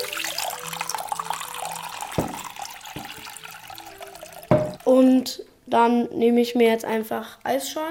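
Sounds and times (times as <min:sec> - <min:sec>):
water pouring into a bowl: 0:00.0 - 0:04.9
sharp knocks: 0:02.2 - 0:02.4, 0:04.5 - 0:04.8
speech: 0:04.9 - 0:07.8.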